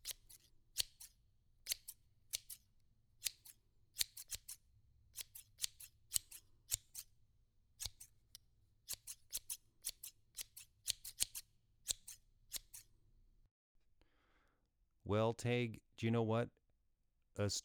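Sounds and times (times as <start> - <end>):
scissors snipping: 0.0 - 4.6, 5.2 - 7.1, 7.8 - 12.9
speech: 15.1 - 16.6, 17.4 - 17.6.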